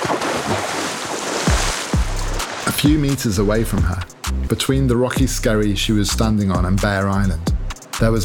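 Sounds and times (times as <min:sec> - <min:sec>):
heavy splashes in the sea: 0:00.0 - 0:03.2
Arctic sea surf off Bear Island: 0:00.0 - 0:05.2
wind off Bear Island: 0:00.0 - 0:08.2
speech: 0:02.8 - 0:08.2.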